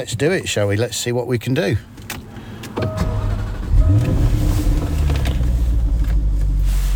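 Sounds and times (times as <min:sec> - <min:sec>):
speech: 0:00.0 - 0:02.2
supercar engine starting and idling in Shetland: 0:01.7 - 0:06.9.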